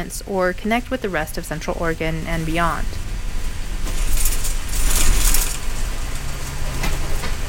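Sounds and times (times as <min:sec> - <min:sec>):
speech: 0:00.0 - 0:03.1
bus engine rumbling and idling at a stop in Simnasho, Central Oregon: 0:00.0 - 0:07.4
faint mechanical rattle: 0:03.4 - 0:07.3.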